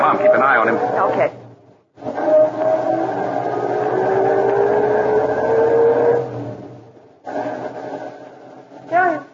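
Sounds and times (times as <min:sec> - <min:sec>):
car engine starting and revving as it pulls away: 0:00.0 - 0:09.0
speech: 0:00.1 - 0:01.4.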